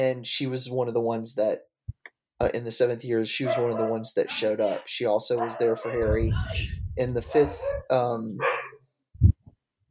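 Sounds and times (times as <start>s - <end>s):
speech: 0.0s - 1.7s, 2.4s - 8.6s
dog barking: 3.4s - 6.6s, 7.4s - 8.8s
short low thumps: 5.8s - 7.9s.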